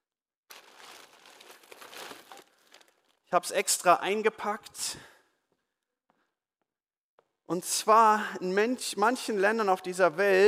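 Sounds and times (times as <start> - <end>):
plastic bread bag rustling as bread is pulled out: 0.5 - 3.3
speech: 3.3 - 5.1, 7.5 - 10.4.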